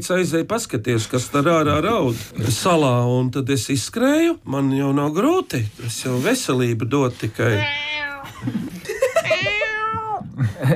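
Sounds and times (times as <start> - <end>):
speech: 0.0 - 8.9
man imitating a cat's meow: 7.4 - 8.3, 9.2 - 10.4
laughter: 8.2 - 10.7.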